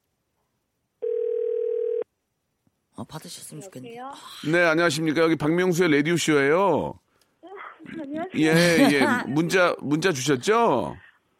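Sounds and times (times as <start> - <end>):
telephone ringback tone: 1.0 - 2.0
speech: 3.0 - 7.0, 7.8 - 11.1
laughter: 7.8 - 9.6.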